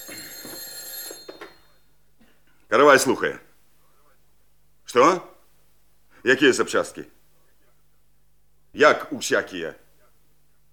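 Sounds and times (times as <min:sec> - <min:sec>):
telephone bell ringing: 0:00.0 - 0:02.0
speech: 0:02.7 - 0:03.5, 0:04.9 - 0:05.3, 0:06.2 - 0:07.2, 0:08.8 - 0:09.8.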